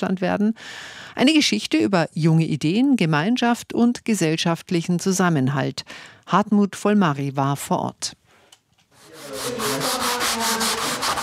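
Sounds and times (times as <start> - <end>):
speech: 0.0 - 8.2
hand sanding of window frames in a former pub in Münster: 9.0 - 11.2.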